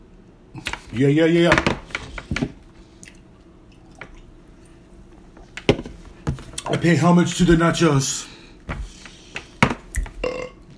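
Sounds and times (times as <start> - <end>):
speech: 0.6 - 1.7, 6.8 - 8.3
person burping: 10.2 - 10.7.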